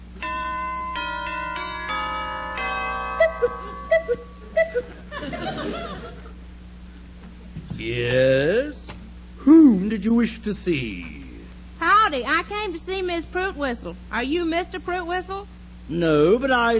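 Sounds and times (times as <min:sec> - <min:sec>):
elaborate doorbell chime playing a sequence of ringing tones: 0:00.2 - 0:05.7
burst of voice or chuckling: 0:03.2 - 0:06.4
speech: 0:07.8 - 0:08.3, 0:09.9 - 0:11.2, 0:12.1 - 0:16.7.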